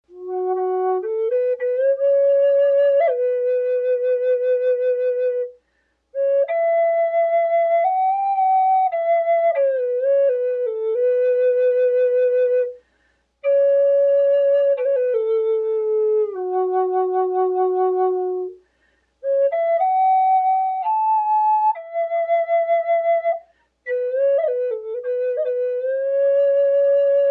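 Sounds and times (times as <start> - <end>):
large F sharp pink ivory flute: 0.1 - 5.6, 6.2 - 12.8, 13.4 - 18.6, 19.2 - 27.3.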